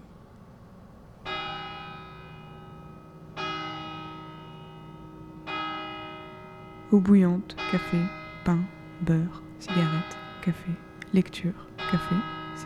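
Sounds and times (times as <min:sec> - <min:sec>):
town church bell ringing: 0:01.2 - 0:12.6
speech: 0:06.9 - 0:12.6.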